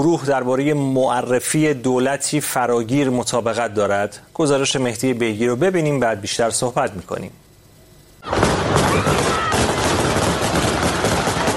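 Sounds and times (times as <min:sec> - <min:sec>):
speech: 0:00.0 - 0:07.5
dense gunfire fired into the air: 0:08.2 - 0:11.5.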